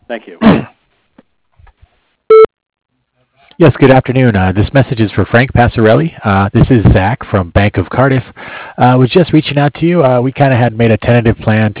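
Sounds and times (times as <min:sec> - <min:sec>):
speech: 0:00.1 - 0:00.7, 0:03.6 - 0:11.7
voicemail beep tone to leave a message: 0:02.3 - 0:02.5.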